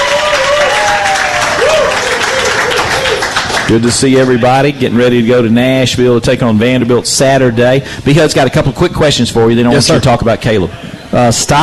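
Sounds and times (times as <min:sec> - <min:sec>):
live crowd applauding for a college football coach: 0:00.0 - 0:04.5
speech: 0:03.7 - 0:11.6.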